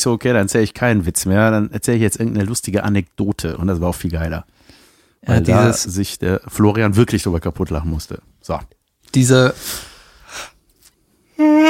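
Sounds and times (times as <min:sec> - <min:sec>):
speech: 0:00.0 - 0:04.6, 0:05.2 - 0:10.5, 0:11.4 - 0:11.6
man yawning: 0:05.2 - 0:05.8, 0:11.4 - 0:11.6.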